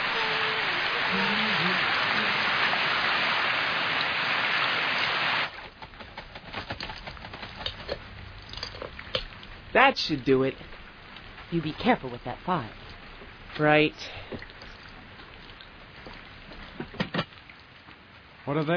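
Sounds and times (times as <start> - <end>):
faint voice-like tone: 0.0 - 2.7
steady dense rain hissing onto a surface: 0.0 - 5.9, 7.9 - 18.7
speech: 9.8 - 10.7, 11.5 - 12.8, 13.6 - 14.5, 18.5 - 18.7.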